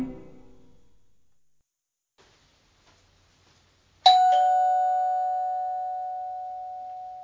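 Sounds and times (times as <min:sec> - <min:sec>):
front-door doorbell chimes: 0:04.1 - 0:07.2.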